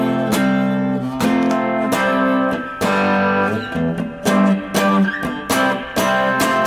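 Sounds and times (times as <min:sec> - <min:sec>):
electric guitar overdriven by amp and tape saturation strumming a chunky rhythm: 0:00.0 - 0:06.6.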